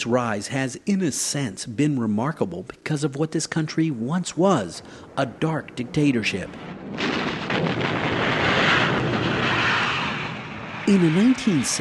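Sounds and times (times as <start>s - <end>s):
speech: 0.0s - 7.2s, 10.9s - 11.8s
heavy rumbling blasts of bombing: 4.0s - 11.8s
warplanes roaring: 4.8s - 11.8s.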